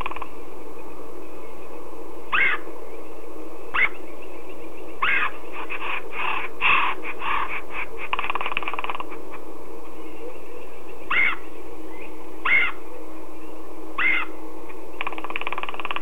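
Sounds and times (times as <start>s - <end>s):
red-headed woodpecker giving harsh raspy calls: 0.0s - 0.4s, 2.3s - 2.7s, 3.7s - 4.0s, 5.0s - 9.4s, 10.0s - 11.6s, 12.4s - 13.0s, 14.0s - 14.4s, 15.0s - 16.0s
steady low hum: 0.0s - 16.0s.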